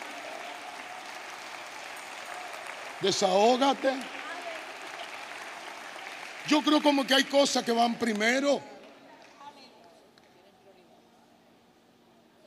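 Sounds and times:
audience applauding: 0:00.0 - 0:09.4
speech: 0:03.0 - 0:04.2, 0:06.5 - 0:08.7.

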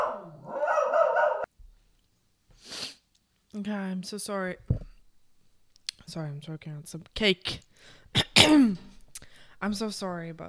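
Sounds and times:
dog barking at people: 0:00.0 - 0:01.5
speech: 0:03.6 - 0:04.8, 0:06.1 - 0:08.9, 0:09.6 - 0:10.4.

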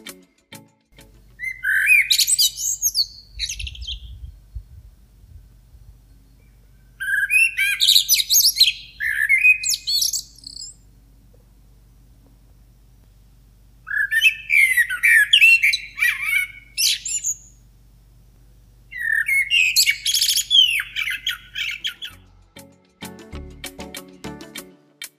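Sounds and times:
faint low hum: 0:01.0 - 0:22.5
songbird singing lilting cascading song: 0:01.2 - 0:10.9, 0:13.9 - 0:17.6, 0:18.9 - 0:22.3.

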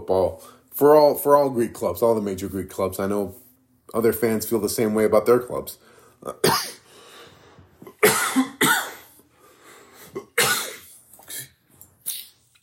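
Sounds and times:
speech: 0:00.1 - 0:06.8
harsh coughing: 0:06.3 - 0:06.8, 0:07.9 - 0:09.2, 0:10.0 - 0:11.6.

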